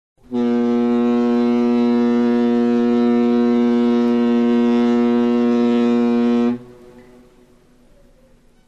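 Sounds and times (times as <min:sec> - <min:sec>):
ship as a means of transport: 0:00.2 - 0:08.6.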